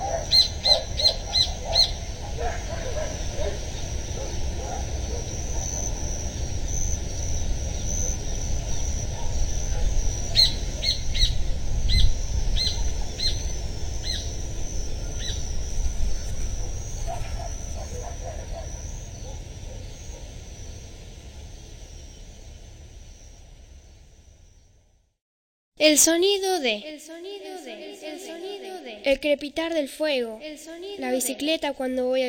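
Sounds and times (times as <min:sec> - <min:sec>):
birds chirping and singing in trees: 0:00.0 - 0:22.6
thin high whine: 0:00.0 - 0:24.9
low outdoor rumble: 0:00.0 - 0:25.2
speech: 0:25.8 - 0:27.2, 0:29.0 - 0:32.2.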